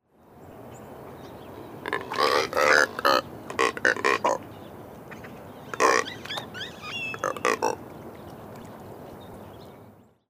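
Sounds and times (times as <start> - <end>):
Neotropic Cormorant Phalacrocorax brasilianus calling: 1.6 - 4.5, 5.1 - 7.8.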